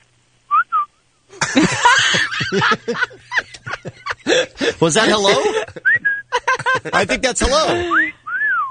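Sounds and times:
loud laughter and chuckling: 1.3 - 8.1
speech: 1.5 - 1.9, 2.5 - 3.4, 4.3 - 5.9, 6.8 - 8.2
orangutan whistling: 5.8 - 6.4, 7.9 - 8.7.

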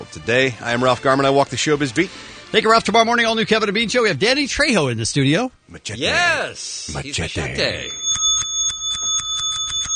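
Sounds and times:
speech: 0.1 - 8.0
bell ringing sound effect with tinny metallic rings: 7.8 - 9.9.

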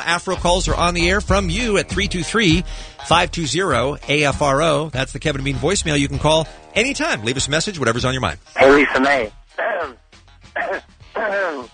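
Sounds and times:
speech: 0.0 - 10.0
person clearing throat: 9.6 - 10.0, 10.6 - 11.7.

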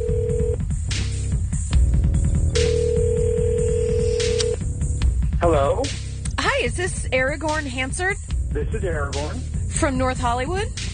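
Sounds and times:
phone dialing tones and clicks: 0.0 - 0.6, 2.6 - 4.6
busy rhythmic music bed: 0.0 - 10.9
speech: 6.7 - 10.9.

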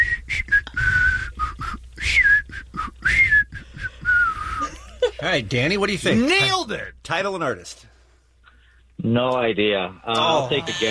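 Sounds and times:
man whistling a song melody slowly: 0.0 - 4.7
speech: 5.2 - 7.9, 9.0 - 10.8.

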